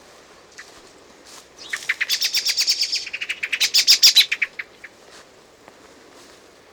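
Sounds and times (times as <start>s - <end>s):
Common blackbird Turdus merula chink calls: 1.6s - 5.0s.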